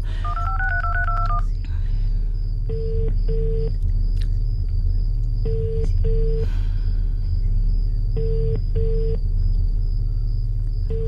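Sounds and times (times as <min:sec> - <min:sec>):
low constant car engine rumble at a gate: 0:00.0 - 0:11.0
cellphone call ringing unanswered: 0:00.2 - 0:01.5
cellphone keypad dialing tones: 0:00.2 - 0:01.5.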